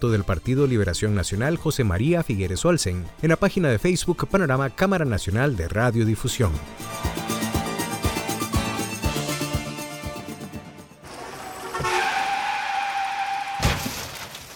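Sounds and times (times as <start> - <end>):
speech: 0.0 - 7.0
rhythmic music with a steady beat: 6.3 - 11.0
sustained tire screech as a car skids: 11.0 - 14.0
car crash with shattering noise: 11.0 - 14.5.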